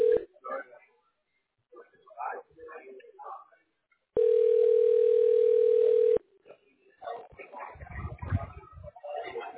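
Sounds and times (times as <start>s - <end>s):
telephone ringback tone: 0.0s - 0.2s, 4.2s - 6.2s
talking: 0.0s - 3.9s, 6.2s - 9.5s.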